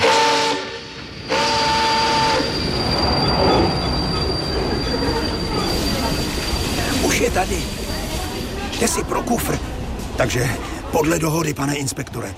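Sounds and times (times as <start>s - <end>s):
train rumbling on rails: 0.0s - 12.0s
train wheel squeal: 1.1s - 7.2s
speech: 8.8s - 12.3s.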